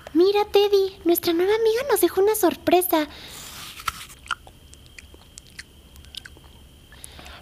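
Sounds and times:
speech: 0.2s - 3.4s
biting and chewing hard cake: 3.5s - 6.6s
soft mouth noise: 3.5s - 7.4s.

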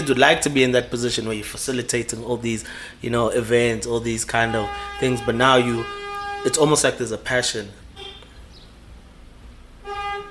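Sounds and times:
speech: 0.0s - 7.8s
low rumbling noise: 0.0s - 10.3s
car horn honk outside: 3.6s - 8.3s, 9.8s - 10.3s.

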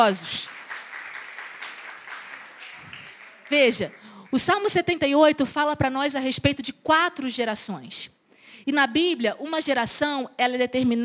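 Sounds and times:
speech: 0.0s - 0.6s, 3.5s - 11.0s
audience applauding: 0.3s - 4.4s.

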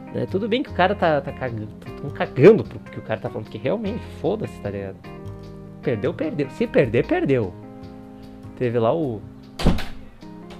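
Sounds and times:
speech: 0.1s - 5.2s, 5.8s - 7.6s, 8.6s - 9.7s
door slamming shut: 9.6s - 10.5s.

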